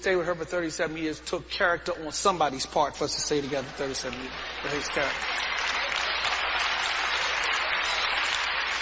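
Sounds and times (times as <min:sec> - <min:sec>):
speech: 0:00.0 - 0:05.6
audience applause: 0:03.3 - 0:08.8.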